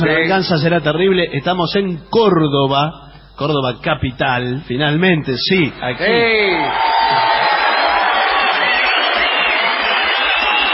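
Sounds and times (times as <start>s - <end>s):
speech: 0.0s - 7.2s
large live audience in the stands of a venue in Córdoba cheering and shouting: 5.8s - 10.7s.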